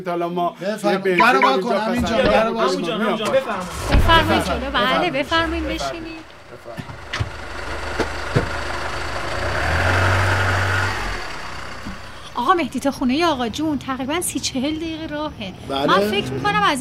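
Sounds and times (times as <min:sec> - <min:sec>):
speech: 0:00.0 - 0:06.9, 0:12.4 - 0:16.7
car engine idling: 0:03.4 - 0:15.0.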